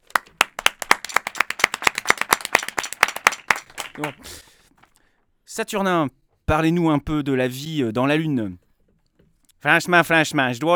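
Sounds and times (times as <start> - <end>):
applause greeting a guest on a studio set: 0.0 - 4.6
speech: 4.0 - 4.5, 5.5 - 8.6, 9.6 - 10.7.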